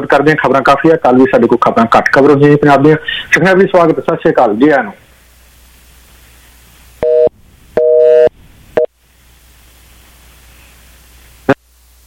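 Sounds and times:
speech: 0.1 - 5.0
busy tone beeps after a dropped phone call: 7.0 - 8.3
low phone line hiss: 7.0 - 8.9.

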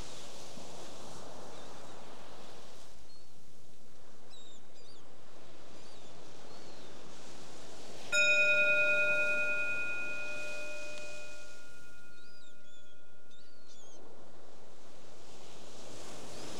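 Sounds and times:
single bell struck with a clear sustained tone: 8.2 - 13.3.

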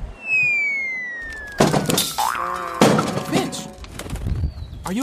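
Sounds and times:
cartoonish falling whistle: 0.2 - 2.5
bird crashing on impact with the ground: 1.3 - 4.3
clattering thud: 1.6 - 2.2, 2.8 - 3.8.

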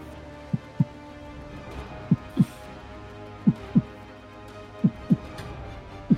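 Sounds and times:
heartbeat sound effect: 0.5 - 1.0, 2.1 - 2.5, 3.5 - 4.0, 4.8 - 5.3.

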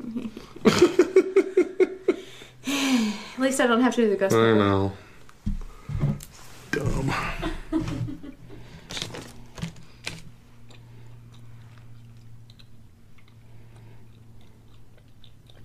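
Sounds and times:
low steady hum: 0.0 - 15.6
speech: 0.6 - 1.0, 3.4 - 5.0
soft chewing of a gummy candy: 8.8 - 15.6.

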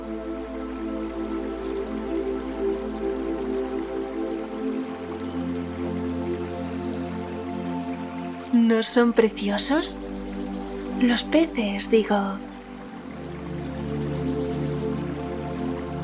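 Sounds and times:
river water flowing: 0.0 - 16.0
speech: 8.6 - 10.1, 11.0 - 12.5.

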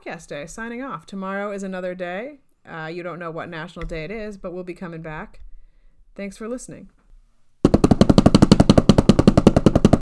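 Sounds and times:
speech: 0.0 - 5.4, 6.2 - 7.0
fast drum roll: 7.7 - 10.0.

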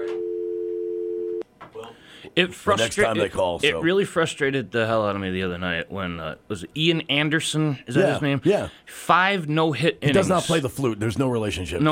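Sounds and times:
telephone dial tone: 0.0 - 1.4
speech: 2.3 - 11.8.

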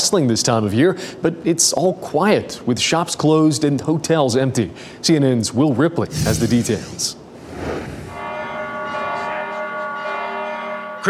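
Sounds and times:
speech: 0.1 - 7.9
church bells ringing: 8.3 - 11.0.

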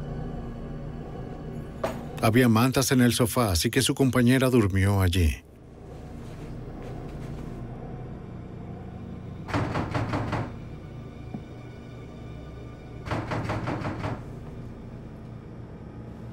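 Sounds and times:
speech: 2.2 - 5.5
bedroom door in an apartment closing with rattling clatter: 9.5 - 10.6, 13.0 - 14.4.

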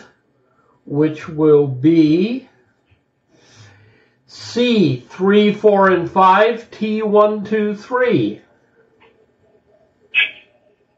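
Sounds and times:
speech: 0.9 - 2.5, 4.3 - 8.4
bird chirp: 10.2 - 10.6.

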